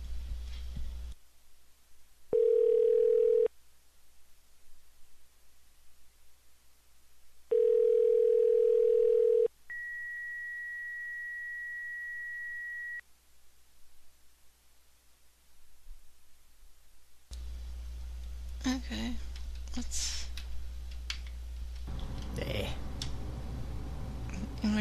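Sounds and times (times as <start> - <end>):
telephone tones while placing a call: 2.4 - 3.5, 7.5 - 9.5.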